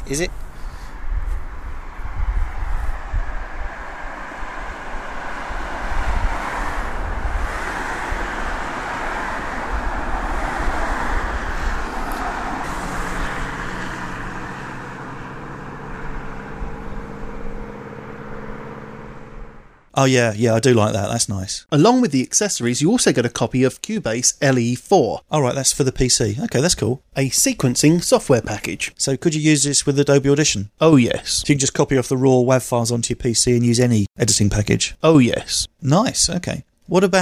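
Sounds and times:
wind buffeting on a pedestrian footbridge: 0.0s - 19.9s
heavy traffic on a major A road: 0.0s - 20.0s
speech: 0.1s - 0.4s, 20.0s - 37.2s.

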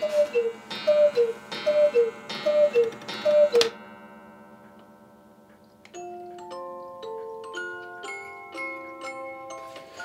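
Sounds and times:
Bavarian cuckoo clock calling in a two-note pattern: 0.0s - 3.8s, 5.9s - 10.0s
tinkling music box melody: 0.0s - 10.0s.

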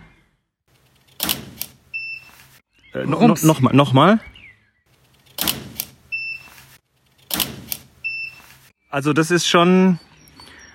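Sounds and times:
speech: 2.9s - 4.3s, 8.9s - 10.1s
large-format camera shutter firing a 1000 watt-second studio flash: 5.4s - 6.0s, 7.3s - 7.9s.

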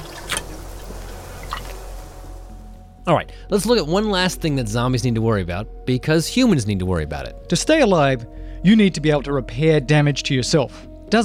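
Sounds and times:
water poured from a box: 0.0s - 2.5s
speech: 3.1s - 11.2s.

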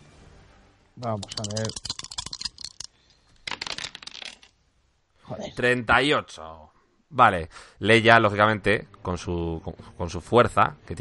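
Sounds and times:
speech: 1.0s - 2.0s, 5.3s - 10.9s
ten six-sided dice being rolled: 1.0s - 4.6s.

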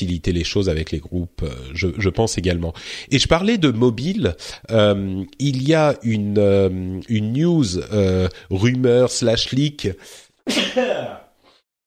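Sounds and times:
speech: 0.0s - 11.2s
person sneezing: 10.5s - 11.3s.

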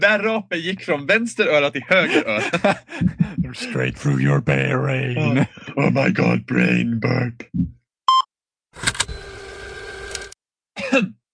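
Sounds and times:
speech: 0.0s - 7.8s, 11.0s - 11.2s
laughter: 1.8s - 4.0s, 5.0s - 6.3s
electronic beep: 8.1s - 8.3s
weak little cough: 10.8s - 11.2s.

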